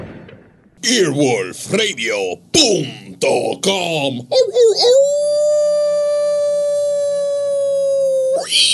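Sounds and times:
speech: 0.8 - 5.6, 8.5 - 8.7
wolf howling: 4.4 - 8.7.

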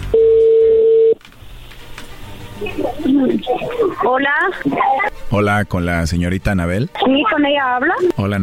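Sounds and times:
telephone dialing tone: 0.1 - 1.2
speech: 3.2 - 8.4.

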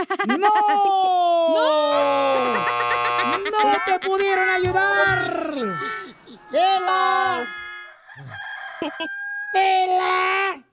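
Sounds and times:
speech: 0.0 - 1.1
laughter: 0.0 - 7.6, 8.8 - 9.2
rooster crowing: 1.9 - 9.8
soft clucking: 2.4 - 9.2.

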